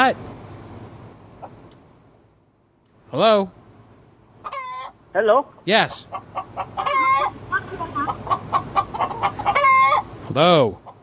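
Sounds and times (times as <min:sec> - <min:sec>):
speech: 0:00.0 - 0:00.3, 0:03.1 - 0:03.6, 0:05.2 - 0:09.4, 0:10.3 - 0:10.8
chicken drawn-out squawking call: 0:04.4 - 0:05.0, 0:05.9 - 0:10.2
chickens clucking: 0:04.4 - 0:05.0, 0:05.9 - 0:11.0.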